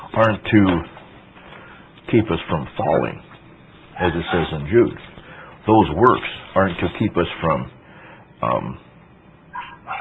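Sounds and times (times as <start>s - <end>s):
low hum: 0.0s - 9.9s
speech: 0.2s - 0.9s, 2.1s - 3.3s, 4.0s - 7.8s, 8.4s - 8.8s
dog barking: 4.0s - 4.6s, 9.5s - 9.9s.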